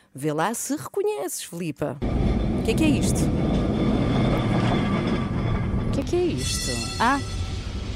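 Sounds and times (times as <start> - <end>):
speech: 0.2 - 3.6, 6.0 - 7.4
faint metallic rattling of the tram: 2.0 - 7.9
tram rumbling along its rails: 2.0 - 7.9.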